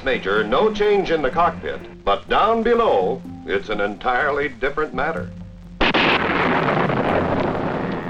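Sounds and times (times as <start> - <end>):
speech: 0.0 - 5.4
double bang of a sonic boom from a supersonic aircraft: 5.8 - 8.0.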